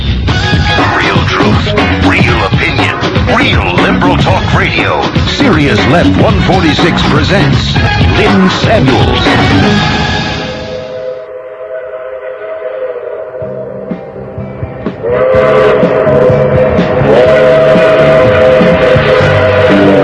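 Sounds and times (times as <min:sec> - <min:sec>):
rumbling rail noise of passing train: 0:00.0 - 0:20.0
speech: 0:04.0 - 0:10.4
loud harmonic train whistle blasts: 0:10.6 - 0:14.0, 0:15.0 - 0:20.0.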